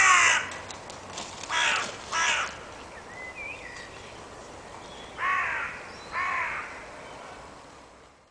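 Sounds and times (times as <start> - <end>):
Carrion crow harsh hoarse caws: 0.0 - 0.6, 1.5 - 2.6, 5.2 - 6.8.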